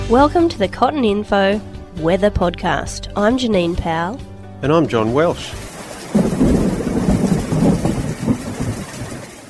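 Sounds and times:
speech: 0.1s - 5.7s
steady rain pattering on a roof: 5.4s - 9.4s
low rolling rumble of thunder: 5.5s - 9.4s.

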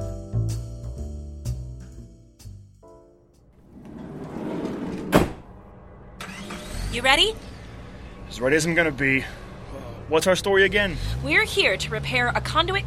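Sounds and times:
van rear doors shutting: 3.6s - 5.6s
speech: 7.0s - 7.5s, 8.3s - 9.4s, 10.1s - 12.8s.

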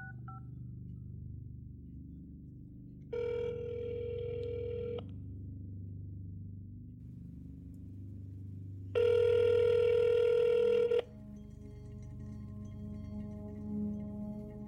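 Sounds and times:
low hum: 0.0s - 14.6s
telephone ringback tone after dialing a number: 9.0s - 11.0s.

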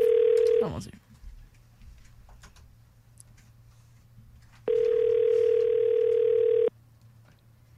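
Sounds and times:
phone ringback tone of an unanswered call from a studio number: 0.0s - 0.7s, 4.7s - 6.7s
speech: 0.6s - 1.0s.

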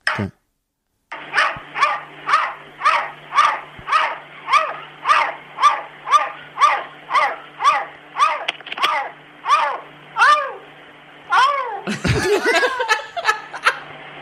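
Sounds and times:
speech: 0.2s - 0.4s
cat barking like a dog out of a window: 1.2s - 10.7s, 11.3s - 11.9s
laughter: 11.8s - 13.9s.

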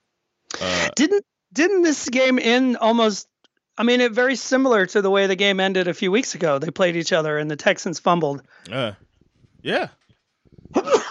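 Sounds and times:
person sneezing: 0.5s - 1.0s
speech: 0.6s - 9.0s, 9.6s - 10.0s.

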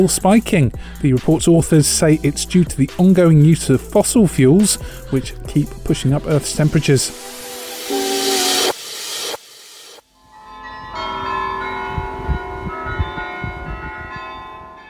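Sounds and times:
speech: 0.0s - 7.4s
loud rushing hiss: 6.7s - 10.0s
large church tower bells ringing pop songs in Utrecht: 10.1s - 14.8s.

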